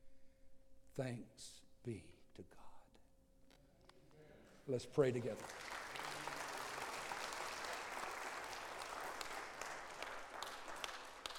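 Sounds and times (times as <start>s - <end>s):
speech: 1.0s - 2.7s, 4.7s - 5.6s
large audience applauding at a worship service: 5.0s - 11.3s.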